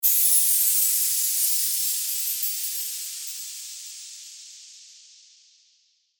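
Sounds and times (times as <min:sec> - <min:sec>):
chimed whoosh: 0:00.0 - 0:04.6.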